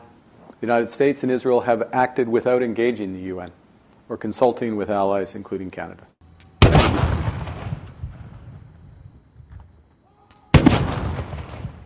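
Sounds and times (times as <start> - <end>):
speech: 0.6 - 6.2
ceremonial gun salute at Parliament House: 6.3 - 11.8.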